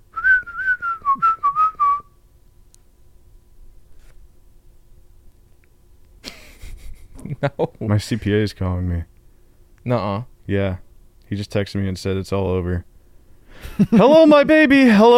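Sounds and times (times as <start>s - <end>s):
person whistling a tune: 0.2s - 2.1s
speech: 7.4s - 9.1s, 9.8s - 12.9s, 13.6s - 15.1s.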